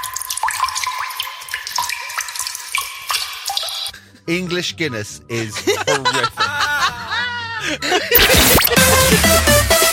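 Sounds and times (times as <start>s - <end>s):
pint of beer pouring from a tap: 0.0s - 3.9s
speech: 4.3s - 6.6s, 7.6s - 9.8s
laughter: 5.3s - 9.3s.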